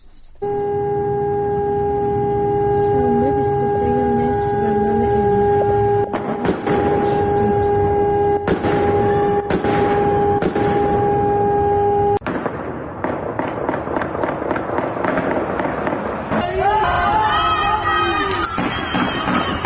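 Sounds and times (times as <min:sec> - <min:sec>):
sudden noisy bursts: 0:00.0 - 0:19.6
siren wailing during a large fire: 0:00.4 - 0:12.2, 0:16.4 - 0:19.6.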